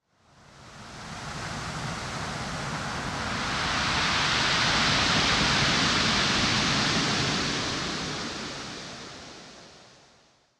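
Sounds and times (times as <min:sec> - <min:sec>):
big ocean waves: 0:01.2 - 0:09.7.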